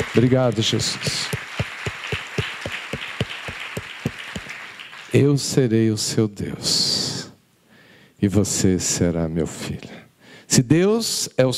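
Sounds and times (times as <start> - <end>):
crowd applauding: 0.0 - 5.3
speech: 0.2 - 1.4, 5.1 - 6.9, 8.2 - 11.5.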